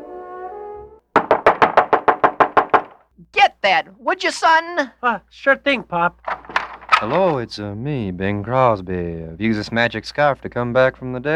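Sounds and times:
brief sustained musical tone: 0:00.0 - 0:01.0
loud knocks on a door: 0:01.2 - 0:03.0
speech: 0:03.6 - 0:06.4, 0:07.0 - 0:11.3.

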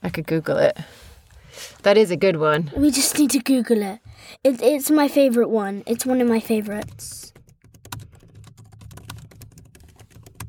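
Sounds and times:
speech: 0:00.0 - 0:07.3
rapid typing on a computer keyboard: 0:06.7 - 0:10.4.

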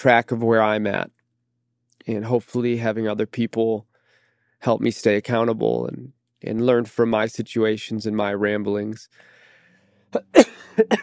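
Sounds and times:
speech: 0:00.0 - 0:01.2, 0:02.1 - 0:03.9, 0:04.6 - 0:09.3, 0:10.1 - 0:11.0
short harsh coughs: 0:10.2 - 0:11.0.

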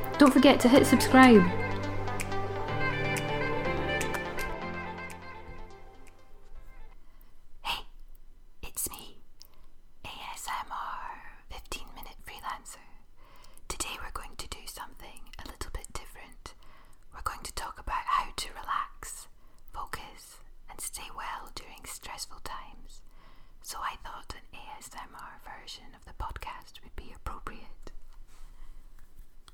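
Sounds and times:
person whispering in ASMR style: 0:00.0 - 0:01.6, 0:07.6 - 0:08.0, 0:08.6 - 0:09.2, 0:10.1 - 0:13.0, 0:13.7 - 0:23.0, 0:23.6 - 0:28.0
tonal musical opening: 0:00.0 - 0:06.9
speech: 0:00.2 - 0:01.7.

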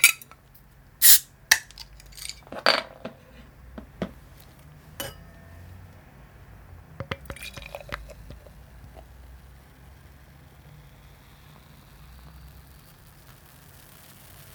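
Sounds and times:
beer bottle opening with metallic pop and hiss: 0:00.0 - 0:00.3, 0:01.0 - 0:04.2, 0:07.0 - 0:09.1
glassy clinks: 0:05.0 - 0:05.8, 0:07.1 - 0:08.2.

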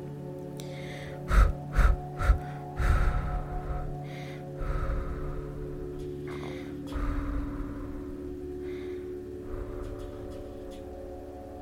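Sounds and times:
pulsing breaths from a relaxation breathing exercise: 0:00.6 - 0:11.4.

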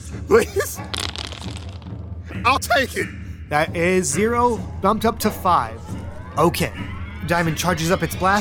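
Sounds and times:
speech: 0:00.1 - 0:08.3
dice being rolled during a game: 0:00.8 - 0:02.0.

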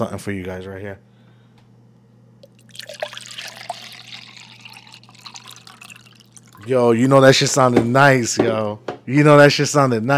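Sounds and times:
speech: 0:00.0 - 0:01.1, 0:06.6 - 0:10.1
low steady hum: 0:00.0 - 0:08.3
water trickling and splashing as it is poured: 0:02.4 - 0:06.9.

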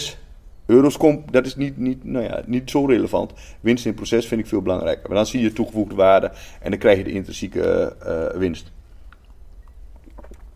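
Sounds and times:
low steady hum: 0:00.0 - 0:10.5
speech: 0:00.1 - 0:08.8
person sipping water: 0:08.8 - 0:10.5.

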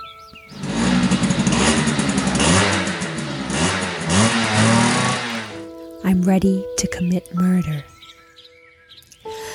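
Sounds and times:
dirt bike engine revving while ridden up and down a field: 0:00.5 - 0:05.6
speech: 0:06.1 - 0:07.9.

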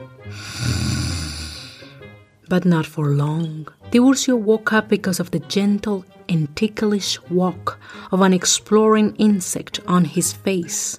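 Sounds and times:
man snoring: 0:00.3 - 0:02.0
speech: 0:02.5 - 0:10.9.

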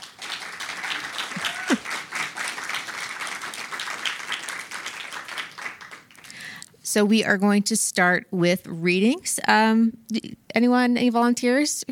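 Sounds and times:
crowd applauding: 0:00.0 - 0:06.4
speech: 0:06.9 - 0:11.9.

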